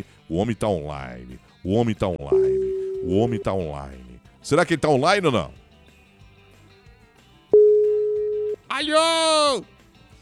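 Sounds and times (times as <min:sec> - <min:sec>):
speech: 0:00.0 - 0:05.6, 0:08.8 - 0:09.7
steady electronic telephone call signal while dialing: 0:02.3 - 0:03.5, 0:07.6 - 0:08.6.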